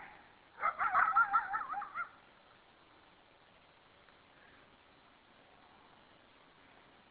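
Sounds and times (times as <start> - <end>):
coyote yipping and howling: 0.0 - 2.2.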